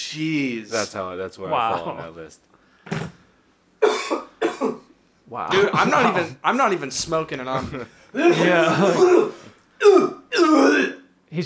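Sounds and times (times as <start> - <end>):
speech: 0.1 - 2.6, 4.6 - 10.0
wet gurgly phlegmy throat clearing: 3.8 - 4.9, 8.2 - 11.0
laughter: 5.5 - 6.4, 7.5 - 9.2.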